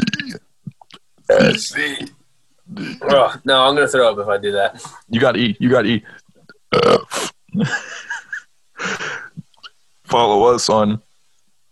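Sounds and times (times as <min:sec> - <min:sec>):
loud croaky belches: 0:00.0 - 0:02.1, 0:06.4 - 0:07.8
speech: 0:01.4 - 0:06.2, 0:07.6 - 0:07.9, 0:10.1 - 0:11.1.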